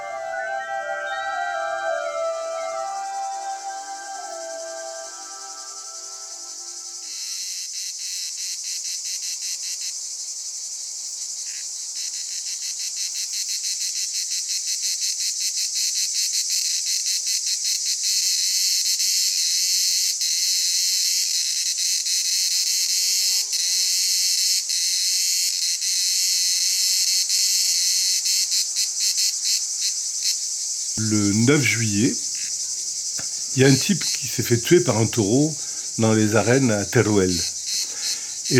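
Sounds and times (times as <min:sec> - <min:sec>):
cicadas singing: 0:00.0 - 0:19.4, 0:20.0 - 0:38.5
speech: 0:31.0 - 0:32.2, 0:33.6 - 0:37.5.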